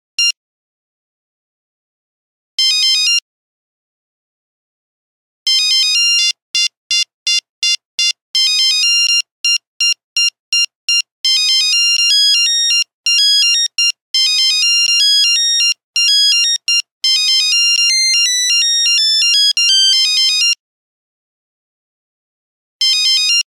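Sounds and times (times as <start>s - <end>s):
Nokia 3410 buzzer ringtone: 2.6s - 3.2s, 5.5s - 20.6s, 22.8s - 23.4s.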